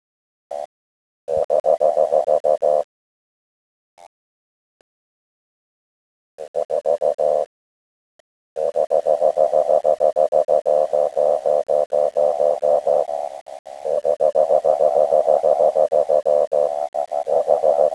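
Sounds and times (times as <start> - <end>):
Odontophrynus barrioi advertisement call pulsed croaks: 1.3 - 2.9, 6.4 - 7.5, 8.6 - 17.9.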